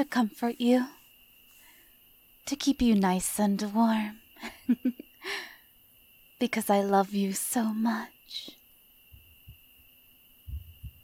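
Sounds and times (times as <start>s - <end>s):
speech: 0.0s - 1.0s, 2.4s - 5.5s, 6.4s - 8.6s
faint constant electronic whine and hiss: 0.0s - 11.0s
human heart beating in the chest: 10.5s - 11.0s.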